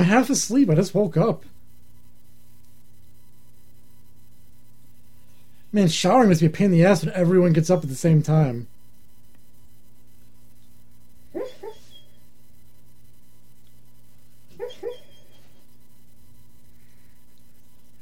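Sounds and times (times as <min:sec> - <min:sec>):
speech: 0:00.0 - 0:01.5, 0:05.7 - 0:08.7
steady hum: 0:00.0 - 0:18.0
dog whimpering in its sleep: 0:11.4 - 0:12.2, 0:14.6 - 0:15.6.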